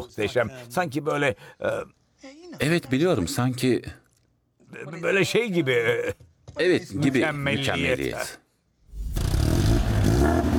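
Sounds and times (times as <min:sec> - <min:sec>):
speech: 0:00.0 - 0:04.0, 0:04.7 - 0:08.4
Italian car exhaust revving with a turbo hitch: 0:08.9 - 0:10.5.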